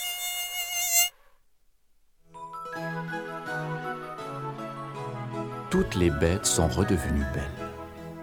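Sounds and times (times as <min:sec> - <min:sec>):
mosquitoes buzzing: 0:00.0 - 0:01.2
gentle music: 0:02.3 - 0:08.2
speech: 0:05.7 - 0:07.6.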